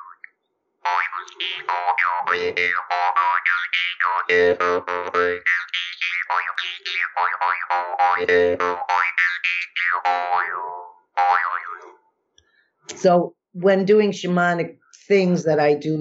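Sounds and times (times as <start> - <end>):
small metal jaw harp held in the mouth twanging: 0.9 - 12.0
speech: 1.4 - 9.1, 9.9 - 12.0, 12.9 - 15.9.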